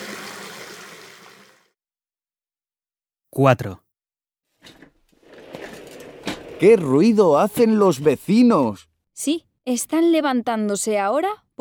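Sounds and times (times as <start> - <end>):
hands washed under running water: 0.0 - 1.7
speech: 3.3 - 3.8, 6.6 - 11.5.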